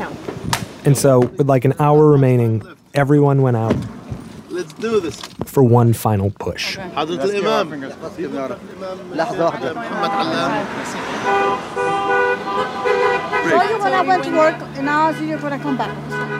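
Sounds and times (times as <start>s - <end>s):
crowd chatter: 0.0s - 3.6s, 4.5s - 16.3s
street noise: 0.0s - 16.3s
speech: 0.8s - 4.0s, 4.6s - 16.3s
passing car horns honking: 9.7s - 16.3s.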